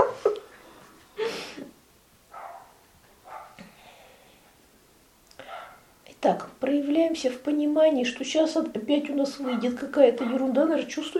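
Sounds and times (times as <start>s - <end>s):
large dog barking loudly: 2.3s - 3.6s, 5.4s - 5.9s
speech: 6.2s - 11.1s.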